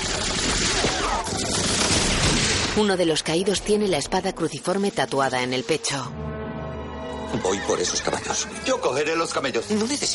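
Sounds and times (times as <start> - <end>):
machine-gun bursts in a film battle scene: 0.0 - 2.8
rifle shots in a film battle scene: 0.0 - 2.8
speech: 2.8 - 6.3, 7.3 - 10.1.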